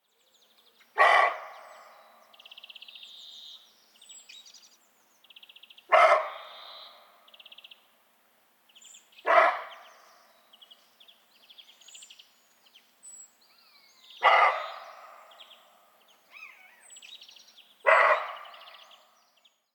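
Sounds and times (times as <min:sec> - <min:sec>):
roe deer Capreolus capreolus alarm call: 0:01.0 - 0:01.8, 0:05.9 - 0:06.6, 0:09.2 - 0:09.8, 0:14.2 - 0:15.3, 0:17.8 - 0:18.8.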